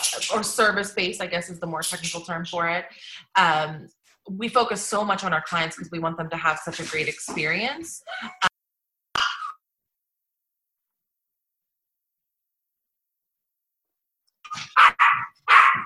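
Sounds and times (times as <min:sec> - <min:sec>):
speech: 0:00.1 - 0:08.5
dog barking as someone arrives home: 0:14.5 - 0:15.8.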